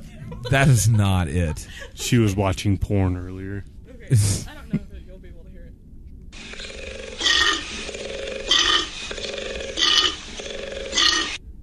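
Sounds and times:
laughter: 0.0 - 2.6
speech: 0.4 - 4.9
koala bellowing: 6.4 - 11.4.

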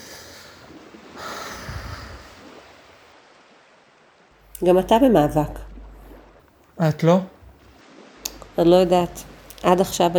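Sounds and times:
man breathing heavily: 0.0 - 2.4
low hiss: 0.6 - 10.1
speech: 4.6 - 5.6, 6.8 - 7.4, 8.6 - 10.1.

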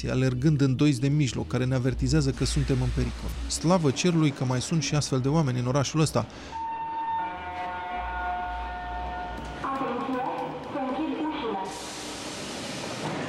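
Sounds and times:
speech: 0.0 - 6.7
metro train pulling away from a station with rumble and whine: 0.0 - 13.2
broad hissing noise of departing metro train: 1.7 - 6.0, 11.4 - 13.2.

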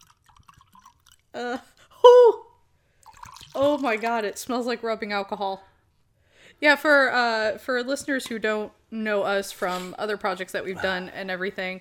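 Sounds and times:
gin glugging out of a bottle into a glass: 0.0 - 1.4, 3.0 - 4.1
speech: 1.3 - 1.8, 3.6 - 5.7, 6.6 - 11.7.

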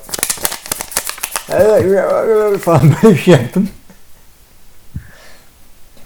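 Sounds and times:
crinkly plastic bag rustling in hand: 0.0 - 3.6
speech: 1.5 - 3.8
laughter: 1.8 - 3.8.

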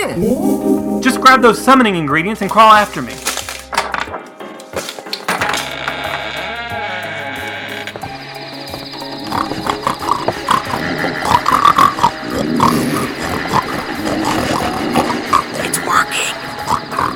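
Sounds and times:
speech: 0.0 - 3.3
drove of pigs grunting and squealing: 6.2 - 17.1
people on all fours snorting and grunting like pigs: 9.0 - 17.1.

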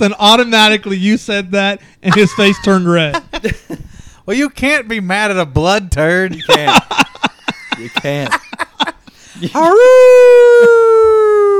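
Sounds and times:
speech: 0.0 - 8.4, 9.4 - 11.5
laughter: 2.1 - 4.0, 6.3 - 10.9
person imitating wolf howl: 9.6 - 11.5.

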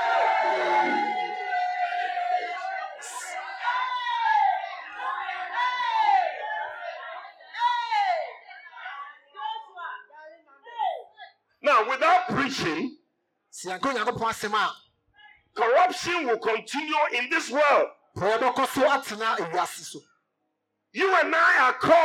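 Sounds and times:
audience shouting together in excited bursts: 0.0 - 8.5
speech: 12.4 - 14.8, 15.6 - 20.1, 20.9 - 22.0.

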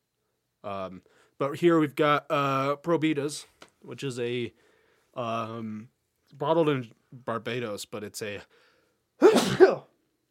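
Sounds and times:
speech: 0.6 - 8.6, 9.2 - 9.9
loud sneeze: 9.2 - 9.9.

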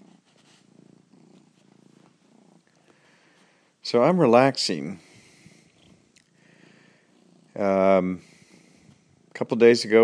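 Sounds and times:
domestic cat purring: 0.0 - 10.0
speech: 3.8 - 5.0, 7.6 - 8.3, 9.4 - 10.0.

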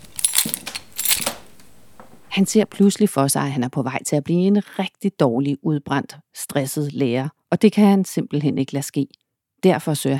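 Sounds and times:
bunch of keys jangling: 0.0 - 1.5
speech: 2.4 - 10.1.

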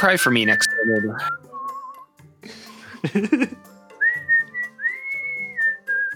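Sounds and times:
speech: 0.0 - 1.4, 2.4 - 3.7
person whistling a melodic tune: 0.5 - 2.1, 4.0 - 6.1
laughter: 2.5 - 3.6.

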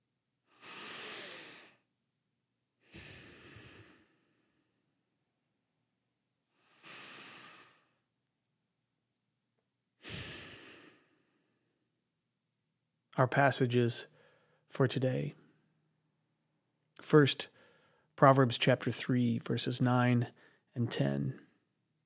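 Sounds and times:
slow deep breaths: 0.5 - 2.0, 2.8 - 5.1, 6.5 - 8.1, 10.0 - 11.9, 14.0 - 14.7, 17.4 - 18.2, 20.3 - 21.7
speech: 13.2 - 14.1, 14.7 - 15.4, 17.0 - 17.6, 18.2 - 21.4.

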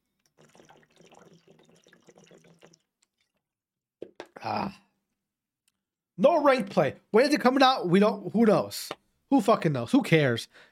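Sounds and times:
water pouring: 0.0 - 4.5
speech: 4.4 - 4.8, 6.2 - 10.7.

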